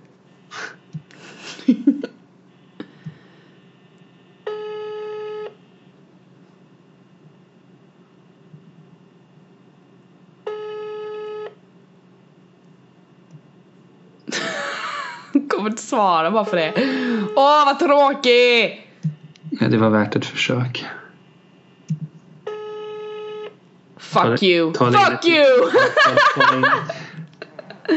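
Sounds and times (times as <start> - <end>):
quiet hum: 0.0 - 27.9
laughter: 1.1 - 2.1, 14.3 - 15.6, 25.0 - 27.9
phone ringback tone on speakerphone: 4.4 - 5.6, 10.5 - 11.5, 16.4 - 17.8, 22.5 - 23.5
speech: 15.9 - 18.8, 19.6 - 20.9, 24.1 - 27.2.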